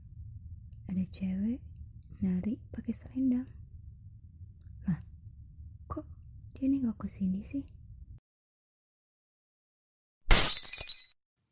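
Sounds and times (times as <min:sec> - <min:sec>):
low rumble: 0:00.0 - 0:08.2
speech: 0:01.0 - 0:03.6, 0:06.0 - 0:07.8
glass fragments tinkling: 0:10.3 - 0:11.2
lamp glass shattering: 0:10.3 - 0:11.2.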